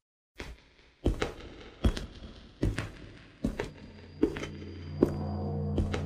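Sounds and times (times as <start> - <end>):
heavy hollow footsteps descending stone steps: 1.0 - 6.0
low droning hum: 3.5 - 6.0.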